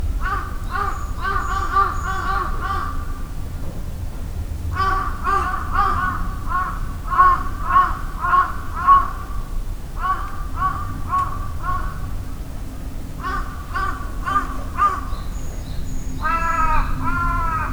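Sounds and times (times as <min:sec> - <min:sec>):
bird giving harsh cawing calls: 0:00.2 - 0:03.2, 0:04.7 - 0:12.2, 0:13.2 - 0:17.7.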